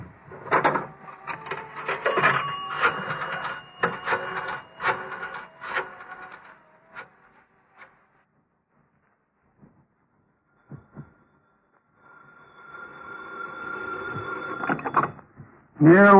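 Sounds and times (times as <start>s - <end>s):
telephone ringing: 0.5s - 7.1s, 12.6s - 15.2s
speech: 15.8s - 16.1s.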